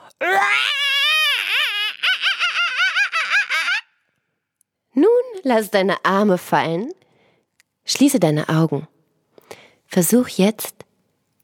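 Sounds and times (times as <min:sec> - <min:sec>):
people screaming loudly together: 0:00.2 - 0:03.9
speech: 0:05.4 - 0:07.0, 0:07.9 - 0:08.9, 0:09.9 - 0:10.8.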